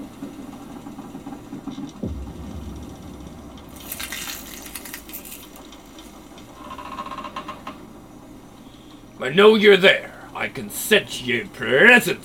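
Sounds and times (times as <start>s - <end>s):
low steady rumble of a ship: 2.0s - 6.2s
speech: 9.2s - 12.2s.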